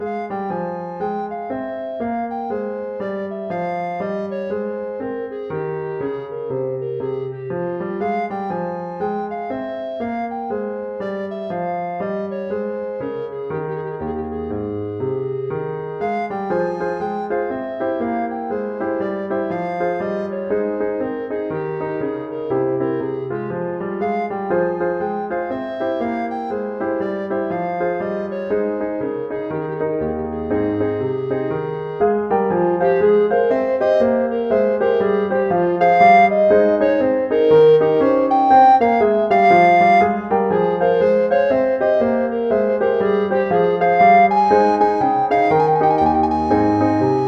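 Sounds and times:
baroque bourree on alto recorder: 0.0 - 47.2.

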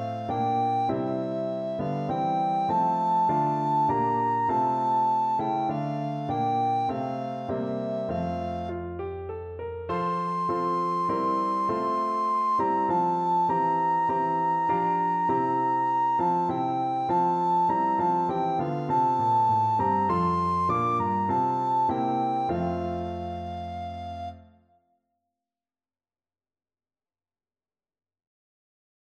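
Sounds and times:
recorder playing an anthem: 0.1 - 8.6, 9.9 - 24.3.

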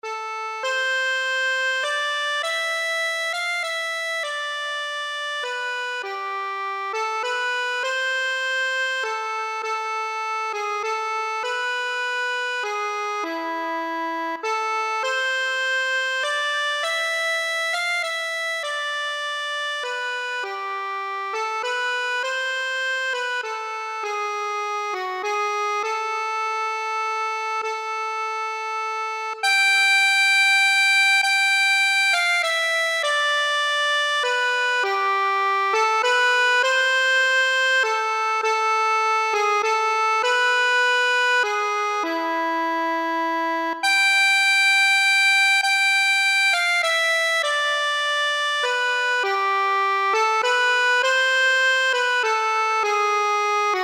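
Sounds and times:
accordion playing a folk tune: 0.0 - 53.8.

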